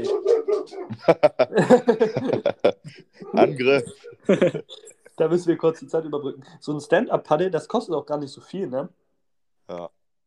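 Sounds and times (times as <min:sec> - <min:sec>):
dog barking with sharp barks and softer yips: 0:00.0 - 0:01.0
laughter: 0:00.8 - 0:05.2
speech: 0:00.9 - 0:02.0, 0:03.6 - 0:09.0, 0:09.7 - 0:10.0.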